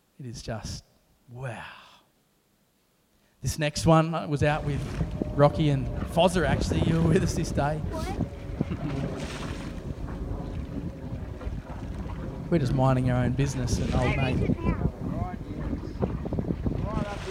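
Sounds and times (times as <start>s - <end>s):
speech: 0.2s - 1.8s, 3.4s - 9.5s, 12.5s - 15.0s
engine-like rumble from a boat at sea: 3.8s - 17.3s
steady wind buffeting the microphone at sea: 3.8s - 17.3s
broad rushing wash of water at sea: 4.4s - 17.3s.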